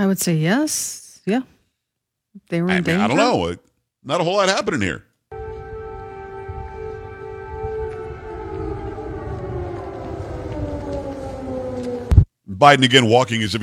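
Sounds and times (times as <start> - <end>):
speech: 0.0 - 1.6, 2.4 - 5.1, 12.6 - 13.6
air raid missile warning siren wailing: 5.3 - 12.3
low rumbling background: 5.3 - 12.3.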